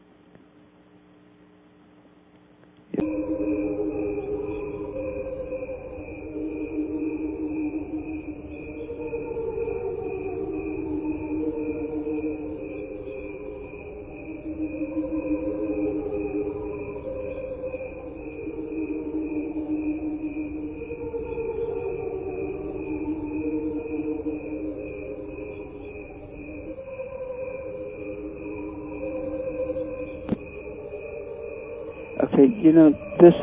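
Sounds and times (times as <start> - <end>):
crickets chirping slowed down into an eerie drone: 0.0 - 33.4
steady rapidly pulsing high note: 3.0 - 33.4
speech: 32.6 - 33.4.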